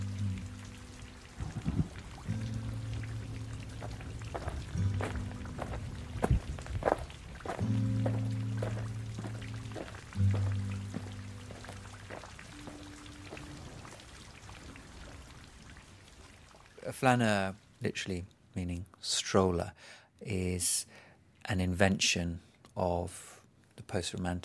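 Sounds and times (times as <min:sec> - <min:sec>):
drips: 0:00.0 - 0:17.9
steady rain falling: 0:00.0 - 0:18.0
speech: 0:16.9 - 0:24.4.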